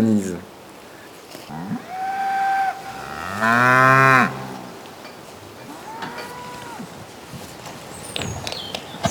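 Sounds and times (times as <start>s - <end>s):
steady outdoor noise: 0.0s - 9.1s
cows mooing: 1.5s - 4.9s, 5.6s - 7.0s.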